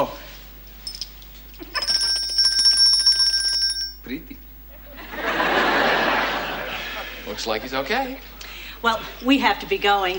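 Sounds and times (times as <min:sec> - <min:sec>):
bell ringing: 0:01.8 - 0:04.1
laughter: 0:04.7 - 0:07.4
speech: 0:07.4 - 0:10.1.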